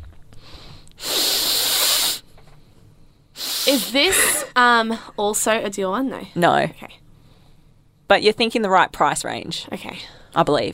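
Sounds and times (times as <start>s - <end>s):
person sniffing perfume on pajamas: 1.0s - 2.2s, 3.4s - 4.5s
speech: 3.7s - 7.0s, 8.1s - 10.7s.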